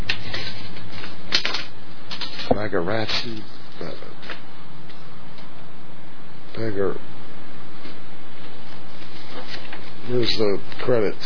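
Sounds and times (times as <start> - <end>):
paper rustling while being handled: 0.0 - 5.0, 7.8 - 10.9
steady hiss: 0.0 - 11.2
speech: 2.6 - 4.1, 6.6 - 7.1, 10.1 - 11.2.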